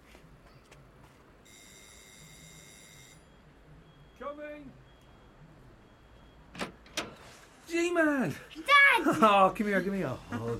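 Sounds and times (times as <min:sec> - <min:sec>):
electronic doorbell buzz: 0:01.5 - 0:03.2
speech: 0:04.3 - 0:04.9, 0:07.7 - 0:10.5.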